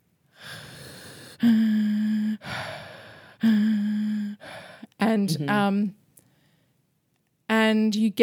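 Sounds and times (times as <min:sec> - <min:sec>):
singer's voice pitched on the in-breath: 0:00.3 - 0:04.9
speech: 0:05.3 - 0:06.0, 0:07.7 - 0:08.2.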